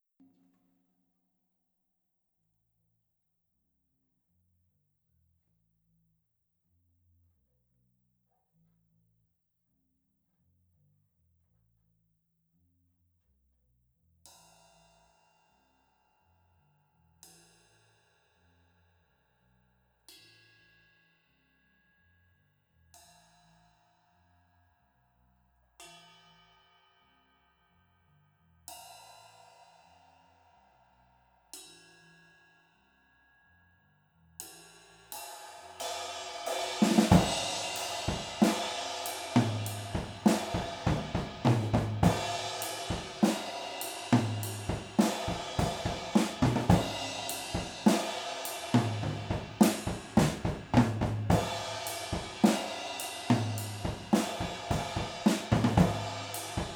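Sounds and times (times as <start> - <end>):
drums: 34.4 - 56.7.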